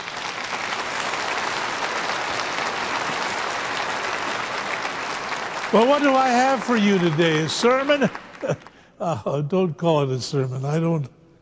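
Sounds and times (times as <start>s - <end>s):
church service audience applause: 0.0s - 8.8s
speech: 5.7s - 11.2s.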